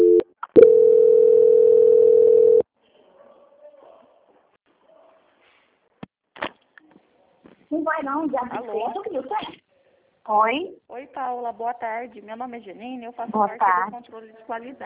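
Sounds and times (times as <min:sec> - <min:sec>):
steady telephone tone while a call is transferred: 0:00.0 - 0:02.6
speech: 0:07.9 - 0:09.6, 0:10.3 - 0:14.8.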